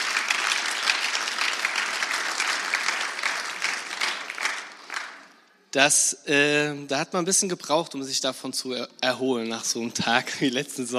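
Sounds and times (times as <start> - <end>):
audience applauding: 0.0 - 5.4
speech: 5.7 - 10.9.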